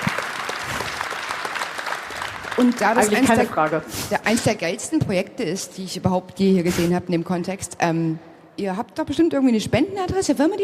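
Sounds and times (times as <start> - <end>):
audience applauding: 0.0 - 4.4
speech: 2.6 - 10.6.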